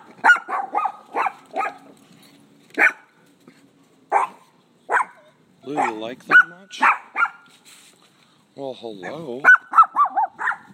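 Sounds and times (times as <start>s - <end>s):
dogs barking: 0.1s - 2.0s, 2.8s - 3.1s, 4.1s - 7.5s, 9.0s - 10.7s
speech: 5.6s - 7.0s, 8.6s - 9.6s.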